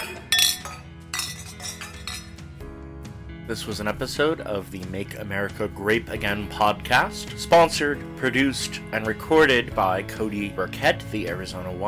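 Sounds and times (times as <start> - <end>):
wine glasses clinking in a toast: 0.0 - 2.4
speech: 3.5 - 11.8.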